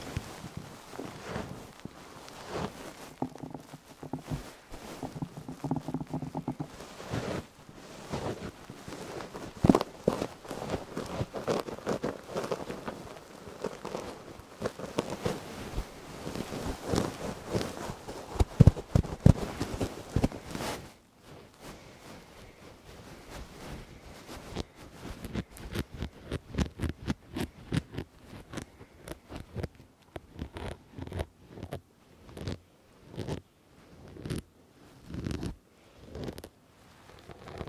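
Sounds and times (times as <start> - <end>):
soft low rumble: 0.0 - 26.5
fluffy microphone covers and ear muffs rubbed against the mic: 0.0 - 37.6.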